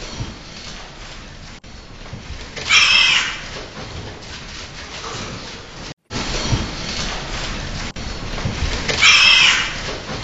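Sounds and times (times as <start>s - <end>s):
pig squealing in pain after tail bite: 2.6s - 3.6s, 8.9s - 9.9s.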